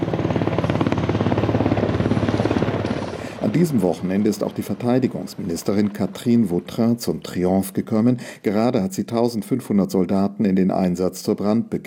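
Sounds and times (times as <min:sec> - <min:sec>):
helicopter flying over a military demonstration: 0:00.0 - 0:07.6
speech: 0:03.6 - 0:11.8.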